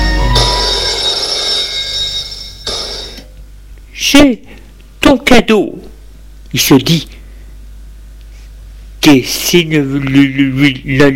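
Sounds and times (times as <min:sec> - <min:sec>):
telephone bell ringing: 0:00.0 - 0:03.4
speech: 0:05.1 - 0:05.9, 0:06.5 - 0:07.2, 0:09.0 - 0:11.1.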